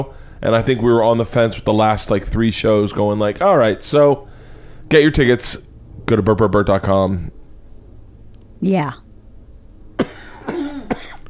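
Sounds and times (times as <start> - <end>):
speech: 0.0 - 4.3, 4.9 - 7.4, 8.6 - 9.0
person coughing harshly: 10.0 - 11.2.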